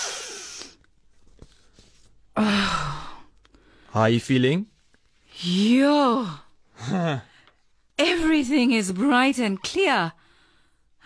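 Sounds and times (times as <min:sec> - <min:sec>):
sharp nasal inhale through a straw held to one nostril: 0:00.0 - 0:00.8
speech: 0:02.4 - 0:02.8, 0:03.9 - 0:04.7, 0:05.4 - 0:07.3, 0:08.0 - 0:10.2.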